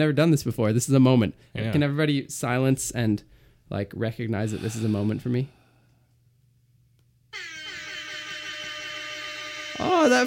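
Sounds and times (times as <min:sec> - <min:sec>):
speech: 0:00.0 - 0:05.6, 0:09.8 - 0:10.2
air horn sound effect from phone app: 0:07.3 - 0:10.2.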